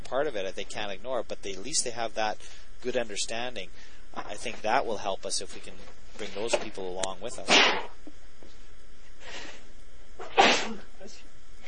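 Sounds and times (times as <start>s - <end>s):
speech: 0.1s - 8.0s, 10.2s - 11.4s
sneeze: 7.5s - 7.9s, 10.2s - 10.9s.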